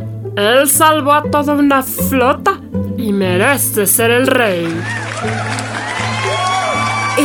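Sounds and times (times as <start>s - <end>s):
speech: 0.4s - 5.6s
crowd cheering and celebrating: 4.5s - 7.2s.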